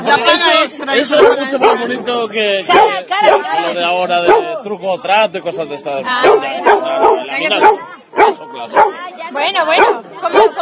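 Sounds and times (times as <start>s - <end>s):
speech: 0.1s - 10.6s
dogs barking with sharp yelping barks: 1.1s - 2.0s, 2.7s - 4.6s, 6.1s - 9.0s, 9.6s - 10.6s.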